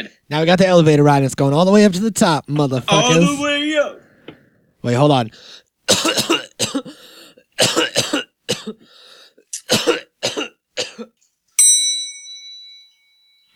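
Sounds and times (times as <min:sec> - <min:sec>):
speech: 0:00.0 - 0:04.0, 0:04.8 - 0:06.8, 0:08.7 - 0:09.0, 0:09.7 - 0:11.1
person coughing harshly: 0:05.9 - 0:09.0, 0:09.6 - 0:11.2.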